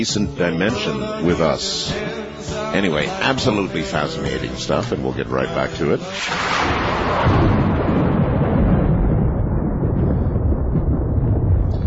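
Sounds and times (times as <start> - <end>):
speech: 0.0 - 7.6
long loud roll of thunder: 6.2 - 11.8.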